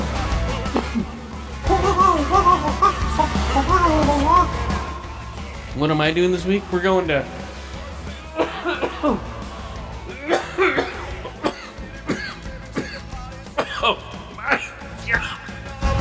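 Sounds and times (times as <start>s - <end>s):
laughter: 0.0s - 5.7s, 7.4s - 15.9s
person coughing: 0.7s - 1.2s, 8.4s - 9.2s, 10.2s - 15.4s
speech: 5.8s - 7.4s, 9.0s - 9.3s.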